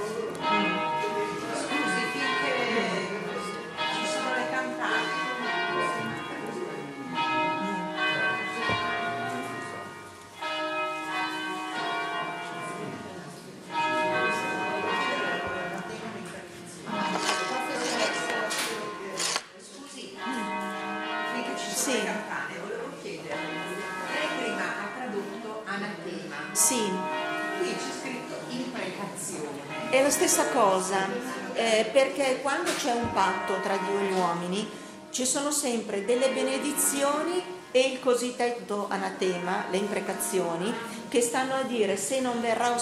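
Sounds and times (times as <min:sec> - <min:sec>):
church bells ringing: 0:00.0 - 0:19.4, 0:20.0 - 0:42.8
speech: 0:30.3 - 0:42.8.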